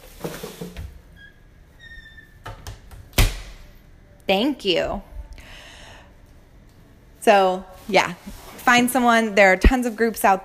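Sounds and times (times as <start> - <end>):
door being pulled shut: 1.2 - 3.4
speech: 4.3 - 5.1, 7.2 - 10.4.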